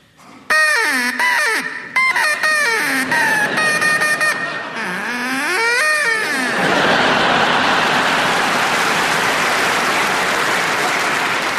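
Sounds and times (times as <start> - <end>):
person imitating duck quacks: 0.5 - 5.0
laughter: 2.1 - 11.5
audience applause: 6.5 - 11.5.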